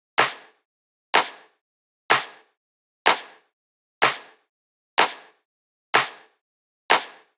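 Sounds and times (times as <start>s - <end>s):
house drum loop claps: 0.2s - 0.5s, 1.2s - 1.5s, 2.1s - 2.4s, 3.1s - 3.4s, 4.0s - 4.4s, 5.0s - 5.3s, 6.0s - 6.3s, 6.9s - 7.3s.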